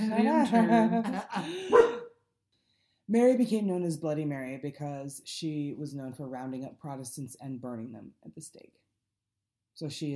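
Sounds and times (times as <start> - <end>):
speech: 0.2 - 1.9, 3.1 - 8.8, 9.8 - 10.1
dog giving drawn-out yowling barks: 1.7 - 2.1.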